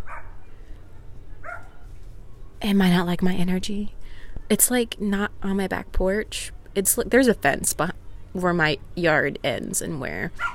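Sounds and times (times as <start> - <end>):
dog barking: 0.0 - 0.4, 1.4 - 1.8, 10.4 - 10.5
speech: 2.6 - 10.5.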